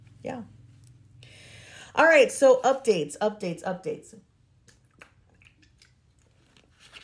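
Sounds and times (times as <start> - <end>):
speech: 0.2 - 0.6, 2.0 - 4.3
wet mouth clicks: 4.6 - 6.3.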